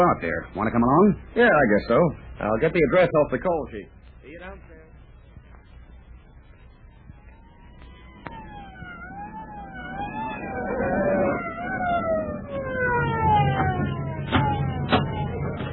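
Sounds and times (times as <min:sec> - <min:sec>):
speech: 0:00.0 - 0:04.8
engine rumble: 0:00.0 - 0:15.7
traffic noise: 0:00.0 - 0:15.7
fire engine siren wailing: 0:05.3 - 0:15.7.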